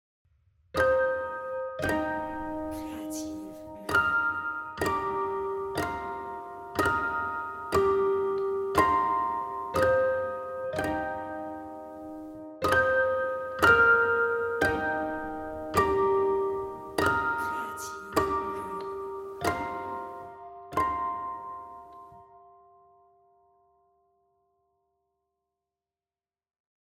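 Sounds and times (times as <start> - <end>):
piano pizzicato: 0.8 - 22.3.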